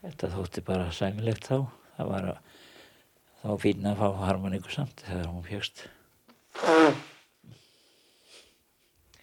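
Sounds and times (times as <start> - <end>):
speech: 0.0 - 2.7, 3.4 - 6.0, 6.6 - 7.6
sharp nasal sniff snorting snuff: 6.5 - 8.6.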